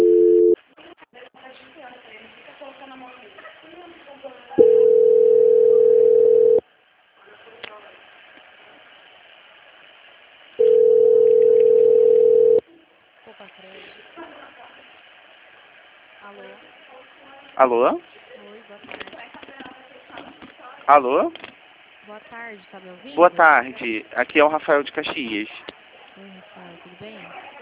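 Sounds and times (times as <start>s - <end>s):
low telephone line ringing tones during call transfer: 0.0s - 0.6s, 4.6s - 6.6s, 10.6s - 12.6s
speech: 17.6s - 18.1s, 20.9s - 21.4s, 22.2s - 26.3s.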